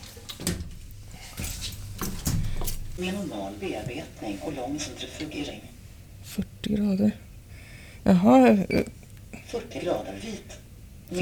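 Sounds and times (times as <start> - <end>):
washing machine door pushed shut: 0.0 - 3.0
handling noise: 0.0 - 4.1
speech: 3.0 - 5.7, 6.3 - 7.3, 8.0 - 11.2.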